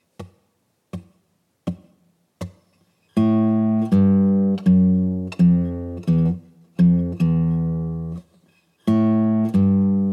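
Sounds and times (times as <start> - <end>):
blues guitar turnaround: 3.2 - 10.1.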